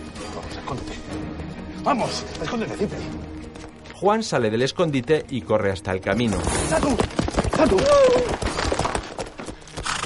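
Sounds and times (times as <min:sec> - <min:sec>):
speech: 0:00.4 - 0:01.2, 0:01.8 - 0:03.3, 0:04.0 - 0:08.5
horse hooves clip-clopping as a rider stops and dismounts: 0:06.7 - 0:10.0.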